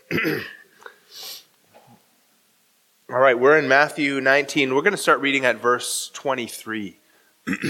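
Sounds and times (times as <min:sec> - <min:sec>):
person coughing: 0:00.0 - 0:00.6, 0:07.5 - 0:07.6
soft low throat clearing: 0:00.0 - 0:00.6, 0:07.5 - 0:07.6
speech: 0:00.1 - 0:01.3, 0:03.1 - 0:07.6
breathy exhale: 0:01.0 - 0:01.5.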